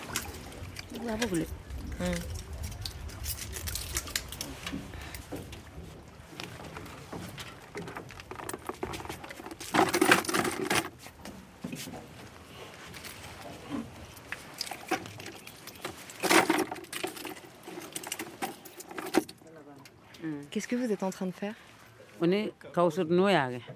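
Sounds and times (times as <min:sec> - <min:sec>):
outdoor ambience: 0:00.0 - 0:22.2
speech: 0:01.0 - 0:02.4, 0:20.6 - 0:23.7
oyster shells clattering while harvested from an oyster bed: 0:07.6 - 0:11.0, 0:14.6 - 0:19.4.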